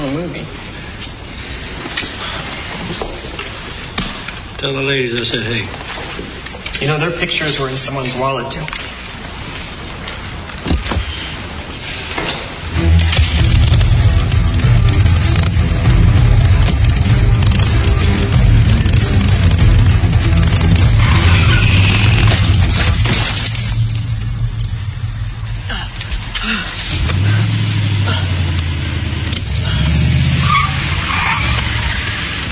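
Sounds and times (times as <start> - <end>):
speech: 0.1 - 0.8, 4.6 - 8.8
car engine rumbling and revving: 12.5 - 32.5
car tires skidding and screeching across pavement: 12.8 - 23.8, 26.8 - 32.5.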